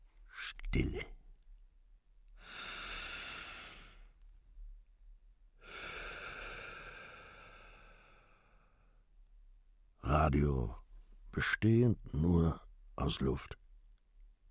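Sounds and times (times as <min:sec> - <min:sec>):
speech: 0:00.7 - 0:01.2, 0:10.3 - 0:10.8, 0:11.4 - 0:13.6
long airy breaths drawn deeply through the mouth: 0:02.4 - 0:04.1, 0:05.6 - 0:09.0.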